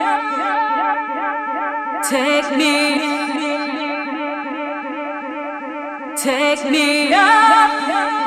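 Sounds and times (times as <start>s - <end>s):
dub techno loops: 0.0s - 8.2s.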